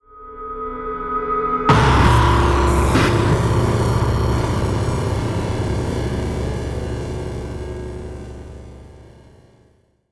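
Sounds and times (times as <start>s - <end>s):
attack sound effect: 1.7s - 9.6s.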